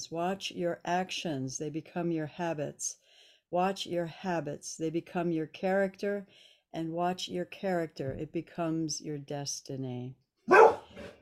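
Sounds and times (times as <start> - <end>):
speech: 0.0 - 10.8
dog barking: 10.5 - 11.1.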